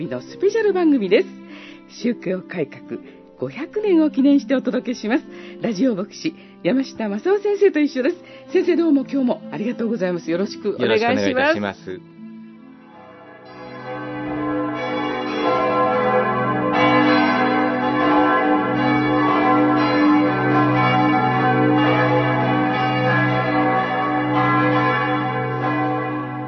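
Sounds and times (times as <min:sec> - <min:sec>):
speech: 0:00.0 - 0:12.1
Saint-Pierre Cathedral bells ringing in Geneva: 0:12.8 - 0:26.4.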